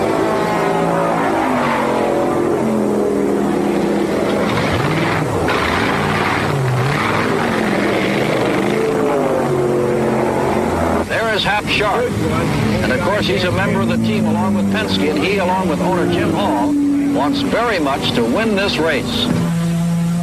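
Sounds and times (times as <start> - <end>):
race car engine idling and revving during a pit stop: 0.0 - 20.2
speech: 13.2 - 19.6.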